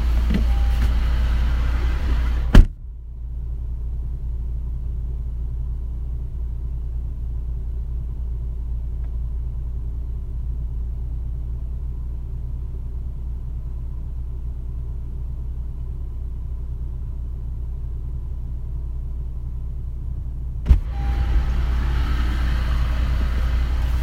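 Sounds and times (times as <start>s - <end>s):
car engine rumbling while parking: 0.0s - 24.0s
sharp thump: 2.5s - 2.9s, 20.6s - 21.0s.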